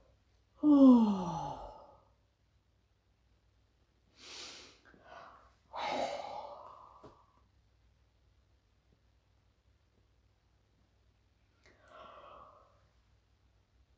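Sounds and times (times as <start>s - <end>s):
person yawning: 0.6s - 2.0s, 5.7s - 7.0s.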